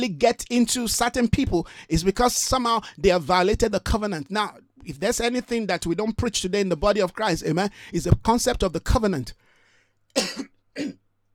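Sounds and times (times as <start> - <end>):
speech: 0.0 - 9.4, 10.1 - 11.0
person clearing throat: 10.2 - 11.0
person coughing: 10.2 - 11.0.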